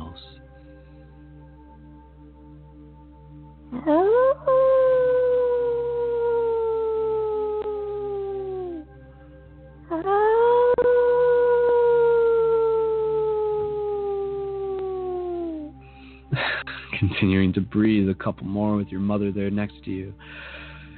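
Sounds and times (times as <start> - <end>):
speech: 3.7 - 4.5, 17.2 - 20.5
person howling like a wolf during a guided breathing exercise: 3.7 - 8.8, 9.9 - 15.8.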